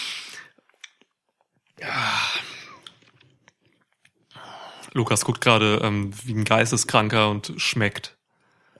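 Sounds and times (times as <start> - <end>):
slurping a hot pomegranate drink: 0.0 - 5.0
speech: 5.0 - 8.2.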